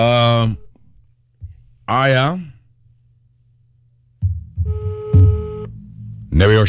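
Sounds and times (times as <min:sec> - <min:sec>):
speech: 0:00.0 - 0:00.6, 0:01.9 - 0:02.5, 0:06.4 - 0:06.6
low throbbing hum: 0:04.2 - 0:06.6
telephone ringing tone on an outgoing call: 0:04.6 - 0:05.7.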